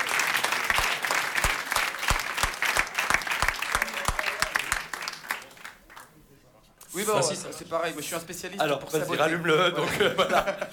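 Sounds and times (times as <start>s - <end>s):
audience clapping to welcome a guest: 0.0s - 6.2s
speech: 7.0s - 10.7s
laughter: 9.3s - 10.7s.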